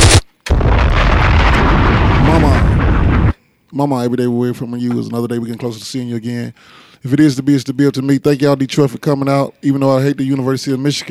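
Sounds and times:
bomb explosions: 0:00.0 - 0:03.4
speech: 0:03.8 - 0:11.1.

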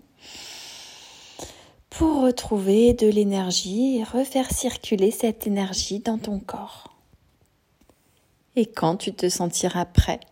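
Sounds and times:
deep breath drawn in through the nose and mouth: 0:00.1 - 0:01.8
speech: 0:02.0 - 0:06.9, 0:08.6 - 0:10.3.

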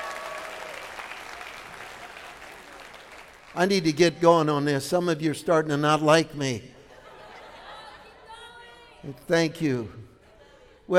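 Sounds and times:
audience clapping their hands: 0:00.0 - 0:03.8
speech: 0:03.6 - 0:06.7, 0:09.0 - 0:10.1
laughter: 0:06.8 - 0:10.9.

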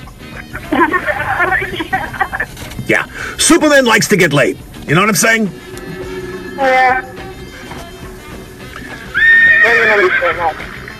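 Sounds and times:
laughter: 0:00.2 - 0:02.6
speech: 0:00.4 - 0:01.9, 0:02.9 - 0:05.7, 0:06.6 - 0:07.1, 0:09.6 - 0:10.6
horse neighing: 0:05.5 - 0:10.8.

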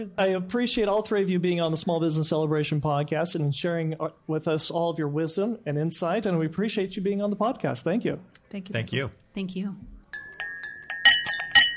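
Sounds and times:
speech: 0:00.0 - 0:09.9
glasses clinking in a holiday party toast: 0:10.1 - 0:11.7.

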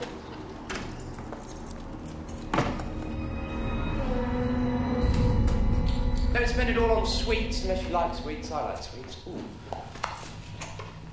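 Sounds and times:
keys jangling as they are handed over: 0:00.7 - 0:02.8
low rumbling background: 0:01.8 - 0:09.6
speech: 0:06.6 - 0:09.9.

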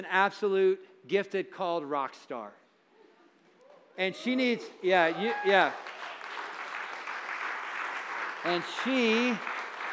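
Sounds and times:
speech: 0:00.0 - 0:02.6, 0:04.0 - 0:05.9, 0:08.4 - 0:09.5
church congregation clapping: 0:05.0 - 0:09.9.

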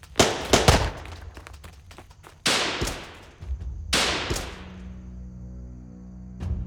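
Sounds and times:
gunfire in a Western-style shootout: 0:00.0 - 0:05.0.

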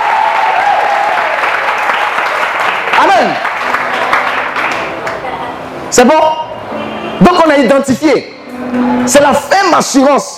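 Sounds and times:
church congregation clapping during a service: 0:00.0 - 0:05.3
speech: 0:03.2 - 0:03.5, 0:05.9 - 0:06.4, 0:07.2 - 0:10.3.

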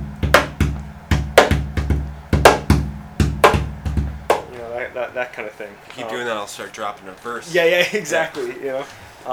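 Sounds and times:
hand thumping back and side of wooden double bass body: 0:00.0 - 0:04.6
laughter: 0:04.4 - 0:09.3
speech: 0:05.0 - 0:09.3.

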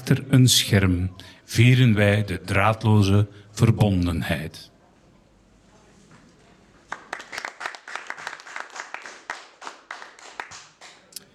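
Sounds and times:
speech: 0:00.1 - 0:04.7
polite applause from a live audience: 0:06.8 - 0:11.1.

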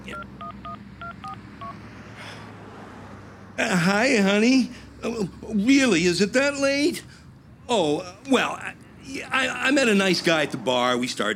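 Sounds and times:
dual-tone keypad beeps of a man dialing a cell phone: 0:00.1 - 0:01.8
speech: 0:03.6 - 0:07.1, 0:07.7 - 0:11.3.

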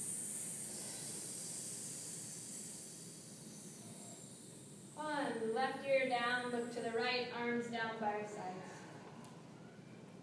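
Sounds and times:
group of people making a snake-like hiss during an exercise: 0:00.0 - 0:04.9
speech: 0:05.0 - 0:08.8.

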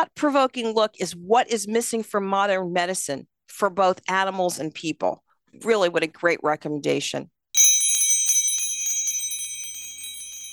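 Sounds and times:
speech: 0:00.1 - 0:07.4
bright bell ringing with rapid repeated strikes: 0:07.6 - 0:10.5.

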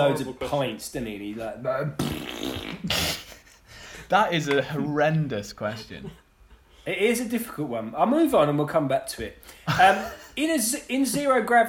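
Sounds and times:
speech: 0:00.0 - 0:03.4, 0:04.1 - 0:06.2, 0:06.8 - 0:11.6
person blowing a loud raspberry imitating a fart: 0:02.0 - 0:03.6
laughter: 0:09.7 - 0:10.4.

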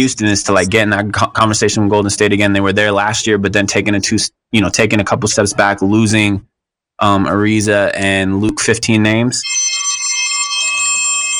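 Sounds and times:
speech: 0:00.0 - 0:09.8
bell ringing continuously to mark an eaten hot dog: 0:09.4 - 0:11.3.

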